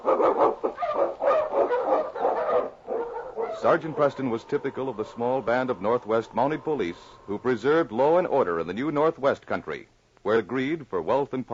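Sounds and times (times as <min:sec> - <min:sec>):
sled dogs barking and yipping: 0:00.0 - 0:07.4
speech: 0:03.6 - 0:11.5.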